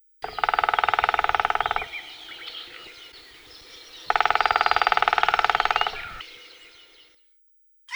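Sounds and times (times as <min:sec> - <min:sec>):
Picus viridis: 0:00.2 - 0:07.0.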